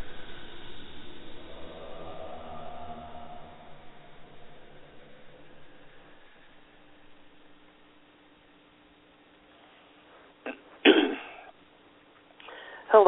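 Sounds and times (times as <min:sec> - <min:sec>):
faint hiss: 0:00.0 - 0:13.0
person clearing throat from a tickle in the throat: 0:10.4 - 0:11.6.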